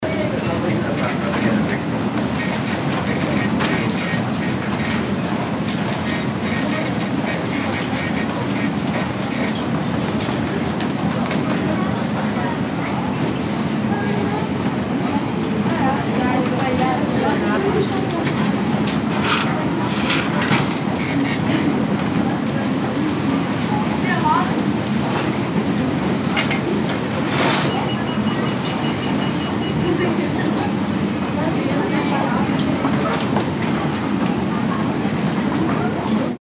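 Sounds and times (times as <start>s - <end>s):
department store ambience: 0.0s - 36.4s.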